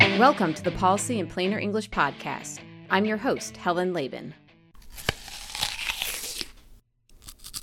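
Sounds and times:
speech: 0:00.2 - 0:04.4
biting into a Honeycrisp apple: 0:04.8 - 0:07.6.

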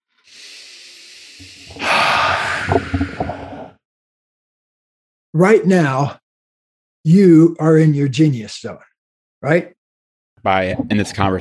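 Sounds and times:
person taking big easy breaths: 0:00.2 - 0:03.7
speech: 0:01.4 - 0:01.9, 0:05.4 - 0:06.2, 0:07.0 - 0:09.8, 0:10.4 - 0:11.3.

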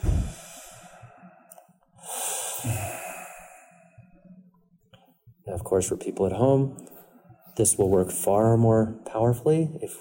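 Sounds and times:
deep slow human breathing: 0:00.0 - 0:04.5
speech: 0:05.6 - 0:06.9, 0:07.6 - 0:10.0.

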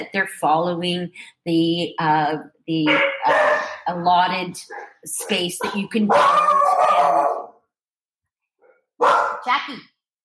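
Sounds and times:
speech: 0:00.0 - 0:07.4, 0:09.0 - 0:09.9
dogs barking at a dog foster house in Tulum: 0:02.8 - 0:03.9, 0:04.6 - 0:07.6, 0:08.6 - 0:09.5.

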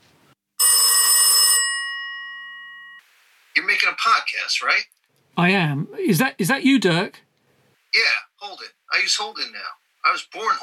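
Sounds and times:
old-fashioned telephone bell ringing: 0:00.6 - 0:03.0
speech: 0:03.8 - 0:07.2, 0:07.9 - 0:10.6.

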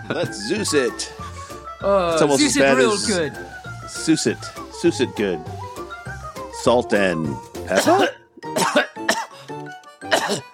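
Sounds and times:
speech: 0:00.1 - 0:05.6, 0:06.6 - 0:08.8
harsh coughing: 0:07.7 - 0:09.5, 0:10.1 - 0:10.5.

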